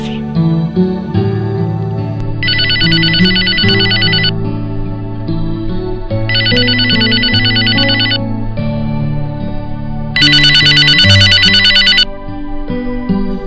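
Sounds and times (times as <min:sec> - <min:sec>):
music: 0:00.0 - 0:13.4
telephone ringing in bright electronic bursts: 0:02.4 - 0:04.3, 0:06.3 - 0:08.2, 0:10.2 - 0:12.1.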